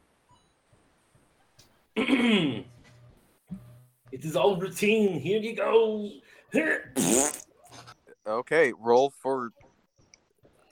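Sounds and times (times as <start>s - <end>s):
single loud voiced cough: 2.0s - 2.6s
speech: 2.0s - 2.7s, 4.2s - 7.4s, 8.2s - 9.6s.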